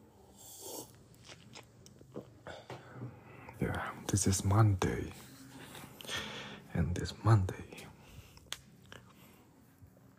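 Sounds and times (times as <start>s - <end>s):
person sipping coffee: 0.2s - 2.8s
speech: 3.6s - 5.3s, 6.8s - 7.8s.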